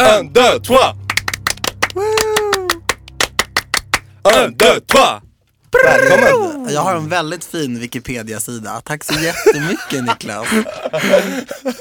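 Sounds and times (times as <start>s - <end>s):
speech: 0.1s - 1.0s, 4.2s - 11.7s
sharp hand claps: 1.0s - 5.0s
sustained vocal whoop: 1.9s - 2.9s, 5.7s - 6.7s
laughter: 9.1s - 11.7s.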